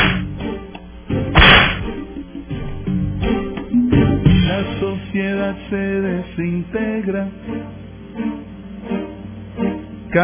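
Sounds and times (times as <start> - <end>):
whip lash cracks: 0.0 - 0.3, 1.4 - 2.0
dense rumbling musical background: 0.0 - 10.2
speech: 4.6 - 8.4.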